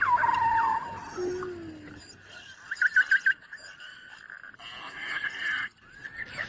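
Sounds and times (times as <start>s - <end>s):
beluga whale whistles, trills and pulsed chirps underwater: 0.0s - 3.3s.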